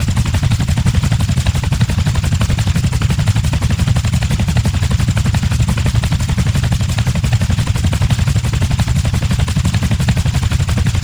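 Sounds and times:
helicopter rotors close: 0.0s - 11.0s.

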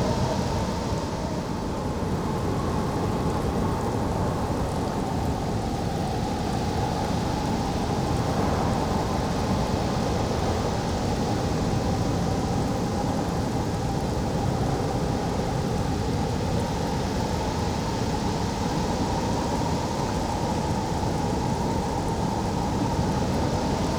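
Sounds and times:
wind on an arctic beach: 0.0s - 23.9s.

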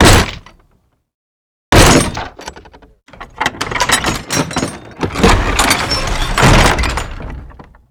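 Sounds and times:
cellar door opening: 2.3s - 7.8s.

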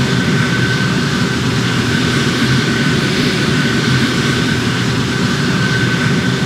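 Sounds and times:
jet engines heard from the side: 0.0s - 6.4s.

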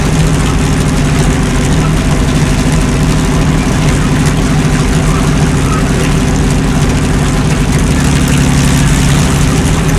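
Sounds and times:
Panther tank engines revving under load: 0.0s - 9.9s.

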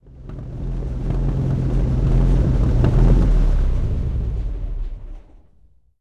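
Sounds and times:
Comet tank engine stopping: 0.0s - 5.8s.

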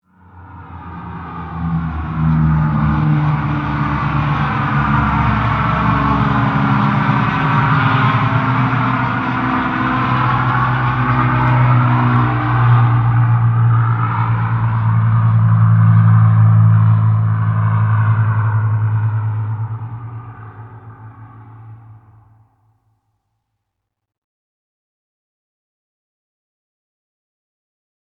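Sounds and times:
aircraft passing by an airfield hangar: 0.1s - 22.4s.

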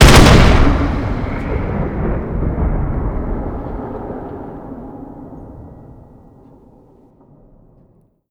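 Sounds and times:
Abrams 120mm tank cannon shot: 0.0s - 6.4s.

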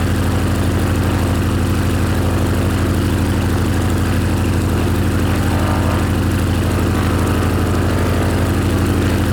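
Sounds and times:
plane: 0.0s - 9.3s.

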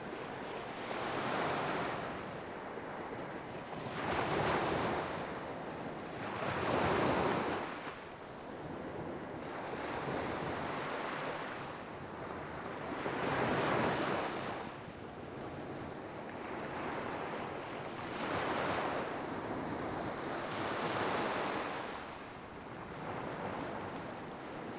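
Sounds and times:
coastal ambience: 0.0s - 24.7s.

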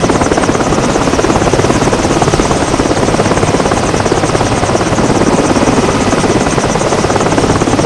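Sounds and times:
Mi-17 helicopter idling: 0.0s - 7.8s.

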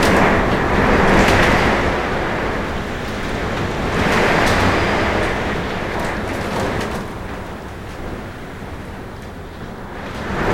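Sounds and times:
wind in a wooden interior: 0.0s - 10.5s.

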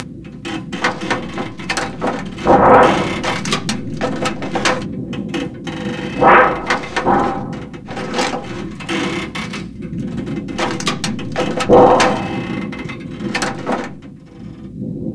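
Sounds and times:
corrugated metal rattling: 0.8s - 4.9s, 6.0s - 9.1s, 10.5s - 12.6s, 13.3s - 14.0s.

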